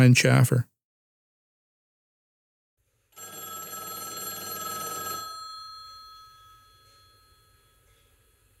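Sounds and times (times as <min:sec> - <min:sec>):
speech: 0:00.0 - 0:00.7
payphone bell ringing: 0:03.2 - 0:07.9.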